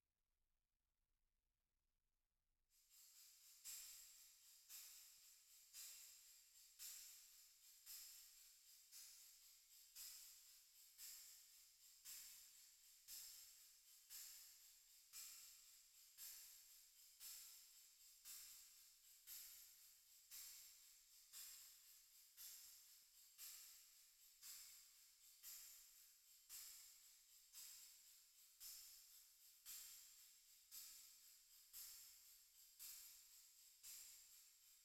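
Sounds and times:
tambourine through reverb unit: 2.7 - 34.8.

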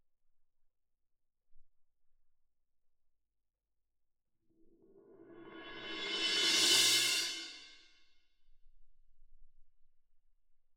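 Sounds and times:
cymbal: 5.2 - 7.9.

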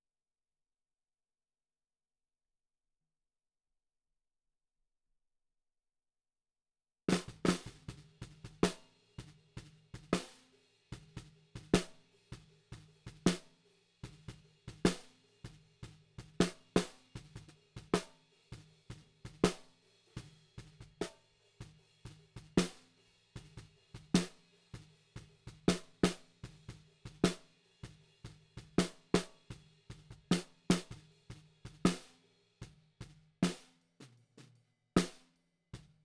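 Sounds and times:
snare drum: 7.1 - 35.9.

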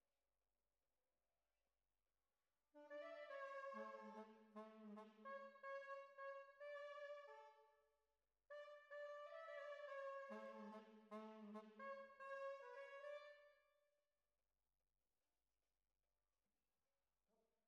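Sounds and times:
horns: 2.8 - 7.6, 8.5 - 13.4.

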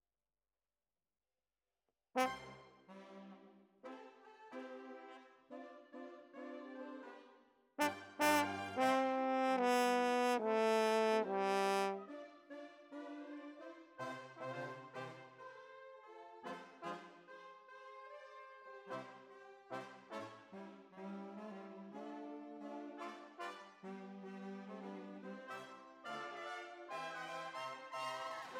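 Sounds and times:
horns: 2.2 - 3.4, 7.8 - 12.2, 19.7 - 28.5.

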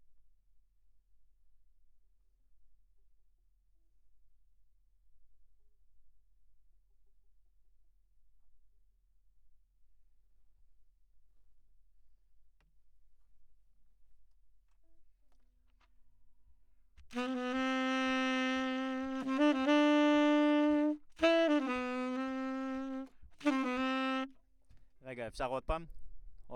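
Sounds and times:
saxophone: 17.0 - 24.4.

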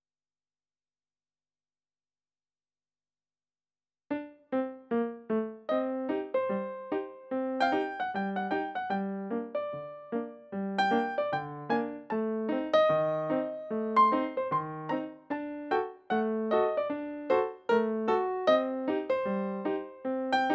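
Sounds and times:
ragtime piano: 4.1 - 20.5.

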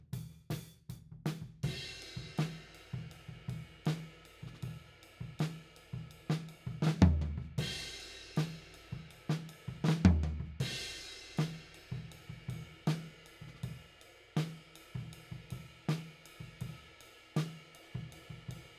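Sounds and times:
tom drum beat: 0.2 - 18.7.

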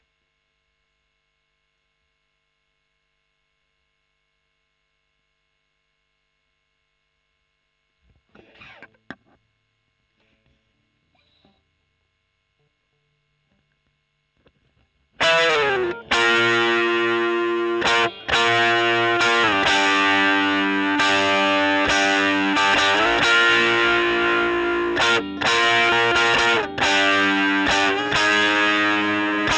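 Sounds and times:
overdriven electric guitar recorded with Gefell microphone: 8.3 - 9.4, 15.2 - 29.5.

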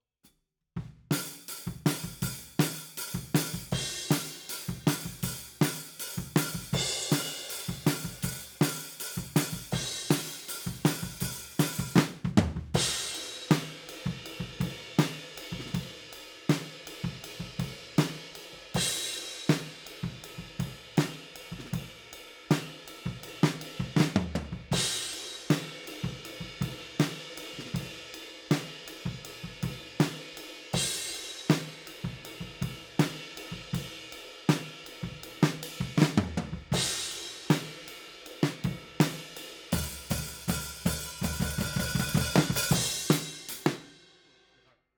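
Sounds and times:
drum overheads at 160 BPM: 0.9 - 18.2, 18.8 - 44.0.

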